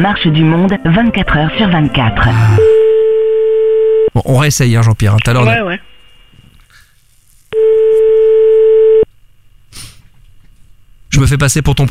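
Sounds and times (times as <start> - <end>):
speech: 0.0 - 2.8, 4.2 - 5.9, 11.2 - 11.9
telephone line tone while a call is being placed: 2.5 - 4.1, 7.6 - 9.1.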